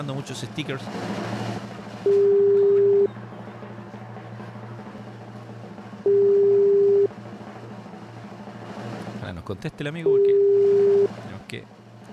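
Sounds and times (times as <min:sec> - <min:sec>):
speech: 0:00.0 - 0:02.5, 0:09.5 - 0:10.8, 0:11.5 - 0:11.8
low hum: 0:00.0 - 0:12.1
outgoing phone call electronic ringing tone: 0:02.0 - 0:03.2, 0:06.0 - 0:07.1, 0:10.0 - 0:11.2.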